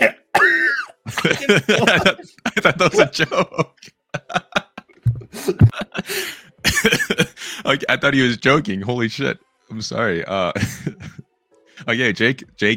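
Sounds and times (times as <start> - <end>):
harsh coughing: 0.0 - 3.6, 6.7 - 7.4
laughter: 1.1 - 7.9, 10.6 - 11.2
speech: 1.2 - 4.4, 7.7 - 10.9, 11.9 - 12.7.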